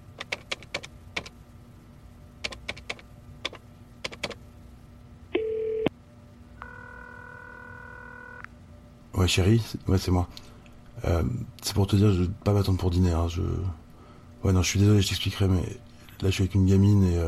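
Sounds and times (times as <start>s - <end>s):
short tone on a desk telephone line: 5.4s - 5.9s, 6.6s - 8.5s
speech: 9.2s - 13.8s, 14.4s - 17.2s.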